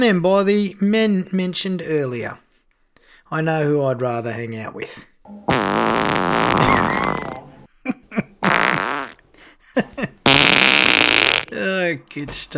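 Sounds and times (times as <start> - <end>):
speech: 0.0 - 2.4, 3.3 - 7.0, 9.8 - 10.1, 11.6 - 12.5
farting: 5.5 - 7.4, 8.4 - 9.2, 10.3 - 11.5.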